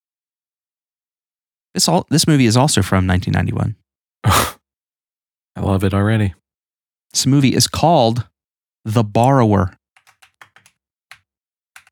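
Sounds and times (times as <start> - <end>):
speech: 1.8 - 4.5, 5.6 - 6.4, 7.1 - 9.8
crisp computer keyboard typing: 10.0 - 11.8.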